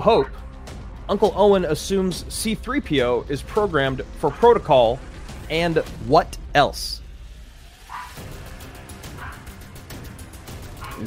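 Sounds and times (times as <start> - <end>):
speech: 0.0 - 0.5, 1.1 - 7.0
dog barking: 7.9 - 8.2, 9.1 - 9.5, 10.8 - 11.0.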